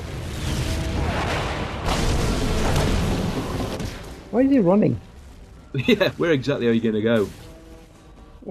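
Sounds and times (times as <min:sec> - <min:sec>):
loud booming explosions with deep rumbling roar: 0:00.0 - 0:06.6
speech: 0:04.4 - 0:05.1, 0:05.7 - 0:07.4.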